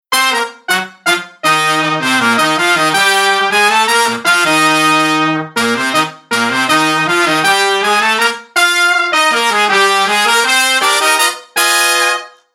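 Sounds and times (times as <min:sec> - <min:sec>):
horn with room sound: 0:00.1 - 0:12.5.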